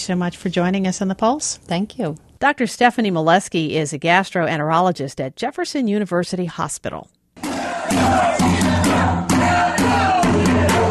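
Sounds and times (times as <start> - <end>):
speech: 0.0 - 7.2, 7.9 - 8.8
crowd of several hundred protesters marching: 7.4 - 10.8.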